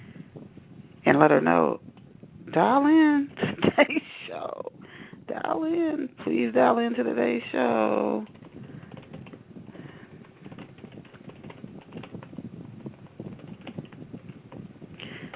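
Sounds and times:
speech: 0:01.1 - 0:01.9, 0:02.5 - 0:04.7, 0:05.3 - 0:08.4
typing on a computer keyboard: 0:08.2 - 0:14.6, 0:15.2 - 0:15.3.

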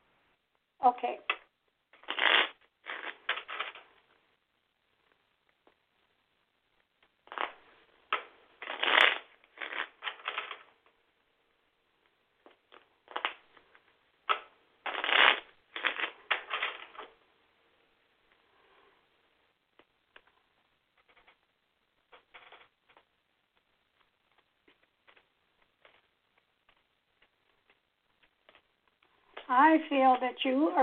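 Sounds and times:
speech: 0:00.8 - 0:01.4, 0:29.5 - 0:30.8
deck of cards shuffled during a phone call on speaker: 0:02.0 - 0:03.8, 0:07.2 - 0:10.7, 0:12.5 - 0:13.7, 0:14.3 - 0:17.1.

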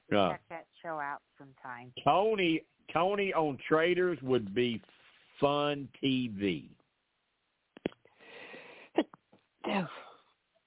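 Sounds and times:
speech: 0:00.1 - 0:06.8, 0:09.7 - 0:10.0
breathy huffs: 0:08.1 - 0:09.0
person sneezing: 0:08.9 - 0:10.2.

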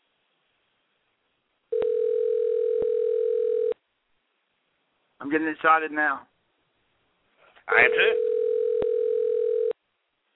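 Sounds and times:
telephone dial tone while placing a call: 0:01.7 - 0:03.8, 0:08.1 - 0:09.8
speech: 0:05.3 - 0:06.3, 0:07.7 - 0:08.3.

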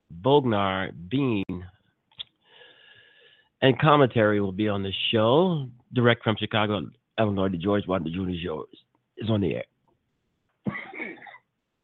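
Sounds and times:
speech: 0:00.2 - 0:01.7, 0:03.6 - 0:09.7
person coughing: 0:10.7 - 0:11.5.

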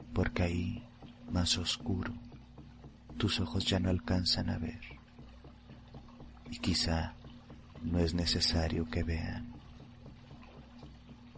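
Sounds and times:
water lapping against a small boat on a river: 0:00.0 - 0:11.3
speech: 0:00.1 - 0:02.3, 0:03.2 - 0:05.0, 0:06.5 - 0:07.2, 0:07.8 - 0:09.6.

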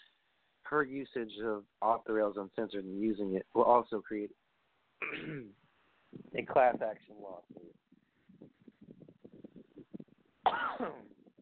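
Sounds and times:
speech: 0:00.7 - 0:04.4, 0:05.0 - 0:07.8, 0:10.5 - 0:11.1
loud harsh cough with wheezy tail: 0:05.0 - 0:05.5, 0:10.5 - 0:11.1
throat-clearing rasps and hacks: 0:05.0 - 0:05.6.

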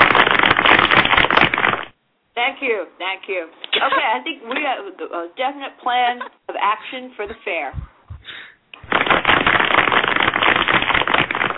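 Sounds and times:
many hands clapping in applause: 0:00.0 - 0:01.8, 0:08.8 - 0:11.5
speech: 0:02.4 - 0:07.9.

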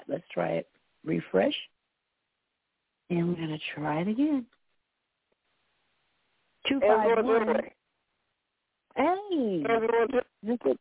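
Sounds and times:
speech: 0:00.1 - 0:01.8, 0:03.1 - 0:04.6, 0:06.6 - 0:07.8, 0:09.0 - 0:10.7
voice over a thin narrow-sounding phone line breaking up: 0:06.7 - 0:07.7, 0:09.0 - 0:10.7.

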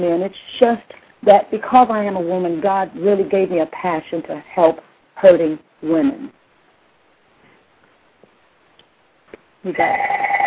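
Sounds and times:
speech: 0:00.0 - 0:06.4, 0:09.6 - 0:10.2
telephone ringing with loud electronic tone: 0:09.8 - 0:10.4.

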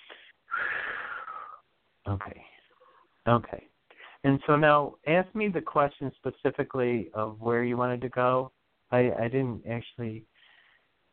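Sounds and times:
person breathing in through the nose and out through the mouth: 0:00.0 - 0:01.6, 0:03.9 - 0:04.2, 0:10.3 - 0:11.0
speech: 0:02.0 - 0:02.6, 0:03.2 - 0:10.3.

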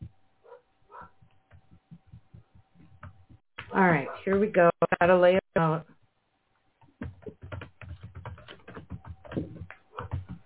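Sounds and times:
dogs barking: 0:00.4 - 0:01.2
speech: 0:03.8 - 0:05.4.

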